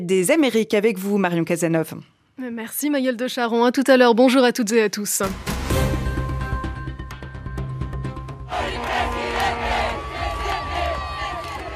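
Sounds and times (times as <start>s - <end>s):
speech: 0.0s - 5.9s
large crowd of supporters cheering and chanting in celebration: 8.5s - 11.7s
shouting voices and whoops: 8.6s - 11.7s.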